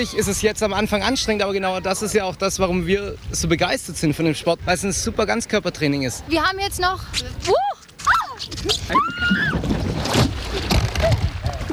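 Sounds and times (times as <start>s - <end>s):
speech: 0.0s - 7.7s
churning sloshing water: 8.8s - 11.7s.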